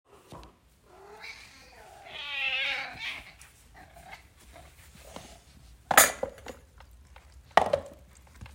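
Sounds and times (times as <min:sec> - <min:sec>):
domestic cat meowing: 0:00.9 - 0:03.4.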